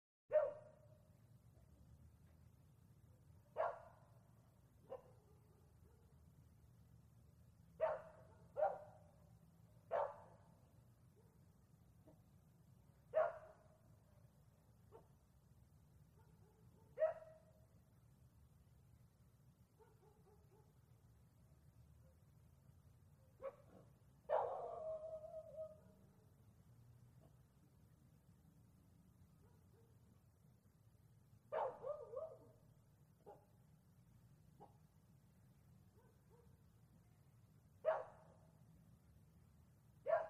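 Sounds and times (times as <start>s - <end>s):
distant bark at night: 0.3s - 0.8s, 3.5s - 4.0s, 4.8s - 6.1s, 7.8s - 9.1s, 9.9s - 10.4s, 13.1s - 13.6s, 16.2s - 17.4s, 19.8s - 20.8s, 23.2s - 26.0s, 31.5s - 32.6s, 37.8s - 38.3s, 40.0s - 40.2s.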